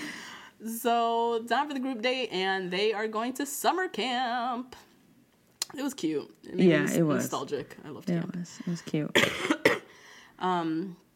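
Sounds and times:
speech: 0.6 - 4.9, 5.7 - 9.6, 10.4 - 11.0
sick person coughing: 9.1 - 9.9.

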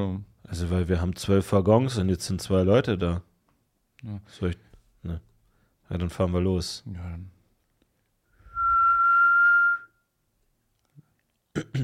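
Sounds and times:
speech: 0.0 - 3.3, 4.0 - 5.3, 5.9 - 7.4, 11.6 - 11.8
trill whistle blown in a loud steady blast: 8.4 - 10.1.

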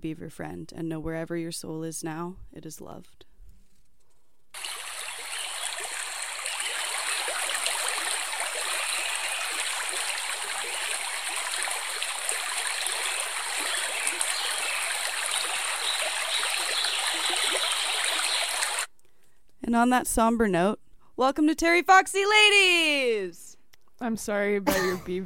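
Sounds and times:
speech: 0.0 - 3.3, 19.8 - 25.2
river water flowing and gurgling: 4.6 - 18.9.

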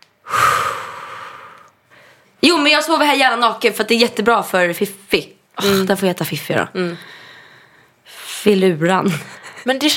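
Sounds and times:
heavy breathing: 0.2 - 2.3
speech: 2.4 - 7.2, 8.4 - 9.9.

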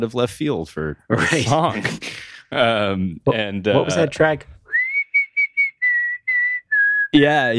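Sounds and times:
speech: 0.0 - 4.6, 7.1 - 7.5
whistled tune of six notes: 4.7 - 7.2.

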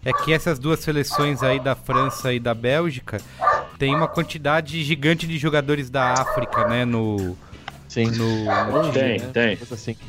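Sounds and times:
speech: 0.0 - 10.0
small dog barking and yelping at a house in Brasília: 1.1 - 2.2, 6.1 - 6.8, 8.5 - 9.1.

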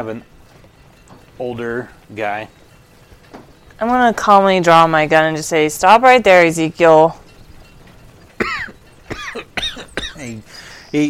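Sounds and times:
speech: 0.0 - 0.3, 1.4 - 2.6, 3.3 - 7.2, 10.2 - 11.0
older man coughing harshly: 8.4 - 10.7.

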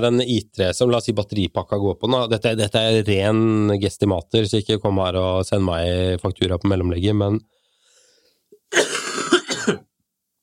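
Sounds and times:
speech: 0.0 - 7.6, 8.7 - 9.0
harsh raspy cough: 8.6 - 9.9
throat-clearing: 8.6 - 9.9.

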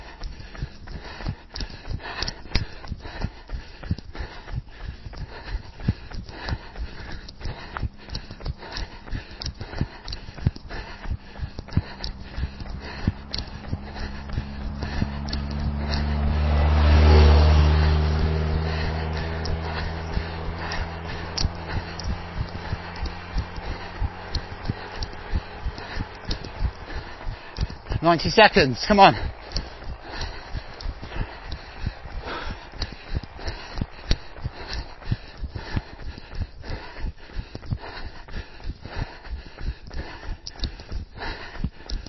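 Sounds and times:
clopping footsteps: 0.0 - 42.0
car approaching from behind and passing: 11.6 - 35.8
speech: 28.1 - 29.4.

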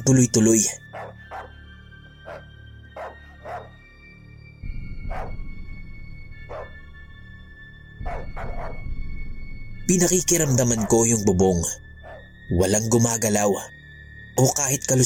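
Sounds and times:
speech: 0.0 - 0.8, 9.9 - 11.9, 12.5 - 13.8, 14.4 - 15.0
dog barking at night: 0.9 - 1.6, 2.2 - 3.8, 5.0 - 5.4, 6.4 - 6.8, 8.0 - 8.9, 12.0 - 12.3.

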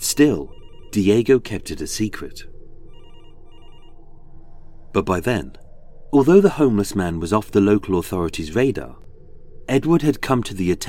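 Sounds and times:
telephone ringing: 0.0 - 2.2, 2.9 - 4.0
steady low rumbling background: 0.0 - 10.8
speech: 0.1 - 2.5, 4.9 - 9.0, 9.7 - 10.8.

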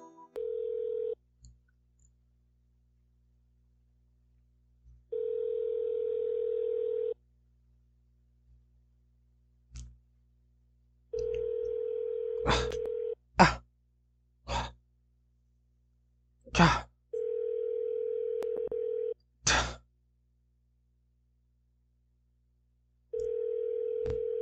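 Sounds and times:
telephone ringback tone on a line to a hotel: 0.4 - 1.2, 5.2 - 7.2, 11.2 - 13.2, 17.2 - 19.1, 23.2 - 24.4
person sighing and breathing heavily: 12.4 - 13.7, 14.5 - 14.8, 16.5 - 17.0, 19.4 - 19.8.

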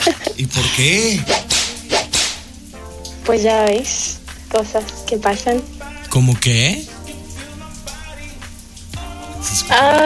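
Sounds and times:
sharp splash: 0.0 - 10.0
steady rain pattering: 0.0 - 10.0
speech: 0.1 - 1.6, 3.3 - 6.9, 9.7 - 10.0
raindrops striking a surface: 1.4 - 2.5.

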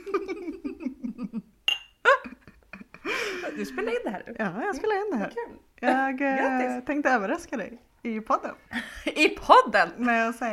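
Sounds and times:
glasses clinking in a toast: 1.7 - 2.0
speech: 3.5 - 10.5.

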